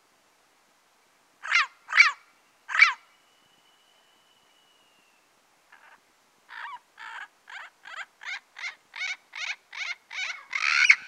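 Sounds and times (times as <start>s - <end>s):
turquoise-fronted amazon squawking in the Pantanal, Brazil: 5.8s - 11.0s.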